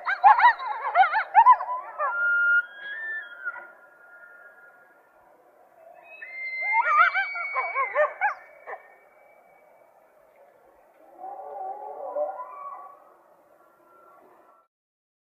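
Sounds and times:
coyote yipping: 0.0 - 4.3, 6.0 - 9.0
coyote wavering howl: 0.0 - 14.6.

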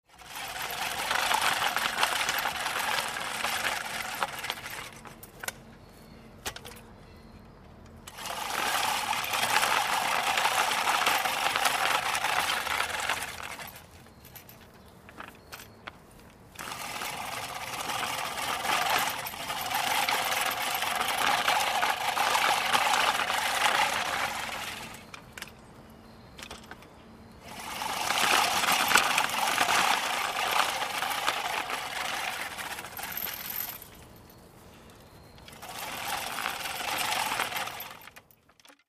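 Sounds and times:
hand-pushed lawn mower at various speeds: 0.0 - 5.6, 8.0 - 15.8, 16.5 - 25.6, 27.4 - 34.2, 35.3 - 38.8.

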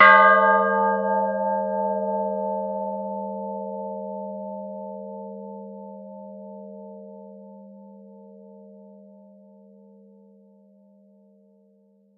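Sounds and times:
church bell ringing: 0.0 - 6.2.

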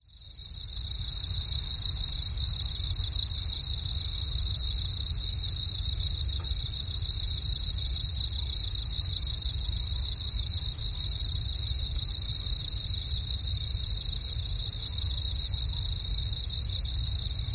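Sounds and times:
cricket chirping in a rapid high-pitched trill: 0.0 - 17.5.

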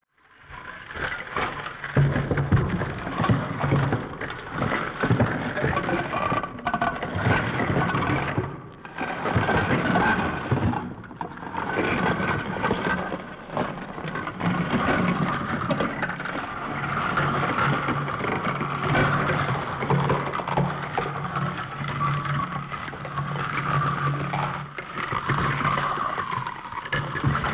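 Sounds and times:
ice rubbing: 0.6 - 27.5.

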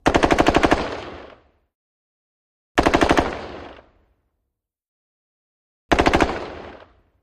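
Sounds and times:
M16 rifle rapid fire: 0.0 - 1.5, 2.8 - 3.9, 5.9 - 7.0.

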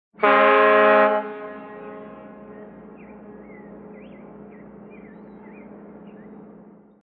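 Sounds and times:
ship horn short blast: 0.2 - 3.4.

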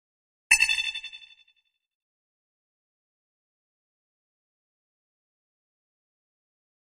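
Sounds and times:
high-frequency electronic ping with reverb: 0.5 - 1.4.

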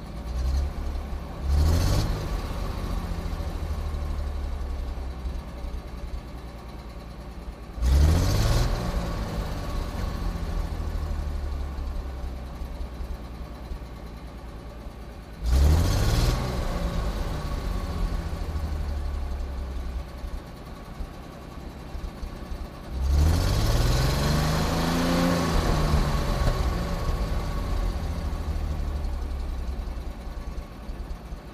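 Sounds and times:
2.5 ton truck engine big revs: 0.1 - 5.2, 7.7 - 12.1, 15.3 - 21.0, 21.6 - 31.3.

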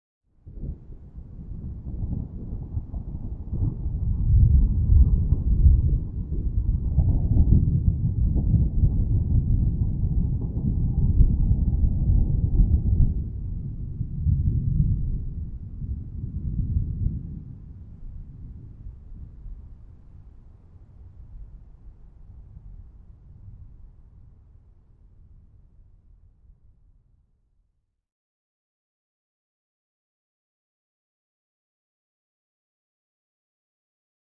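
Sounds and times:
medium distant thunder: 0.5 - 25.6.

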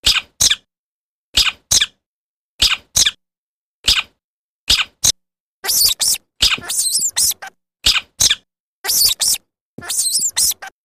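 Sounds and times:
single bat squeaks close: 0.0 - 0.7, 2.6 - 3.2, 3.8 - 10.8.

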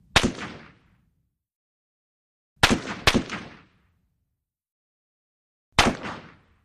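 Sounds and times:
Russian SKS rifle single shot: 0.1 - 0.9, 2.6 - 3.8, 5.8 - 6.6.

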